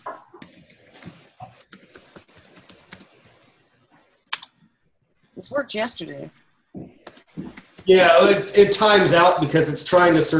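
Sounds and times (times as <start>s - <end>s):
typing a web address on a computer keyboard: 0.0s - 3.6s
speech: 5.4s - 6.4s, 7.9s - 10.3s.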